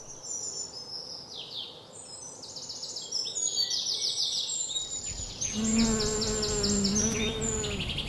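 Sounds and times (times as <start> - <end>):
birdsong chirping: 0.0 - 8.0
bees buzzing around yellow flowers: 5.1 - 8.0.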